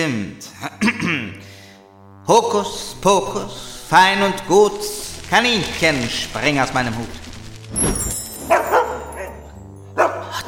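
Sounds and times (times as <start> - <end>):
speech: 0.0 - 1.6, 2.3 - 7.9
dog barking: 8.4 - 9.4, 10.0 - 10.4.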